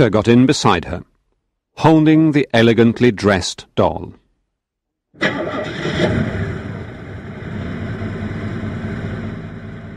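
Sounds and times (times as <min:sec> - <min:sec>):
speech: 0:00.0 - 0:01.1, 0:01.8 - 0:04.2, 0:05.2 - 0:06.4
car engine cranking, starting and idling: 0:05.2 - 0:09.9.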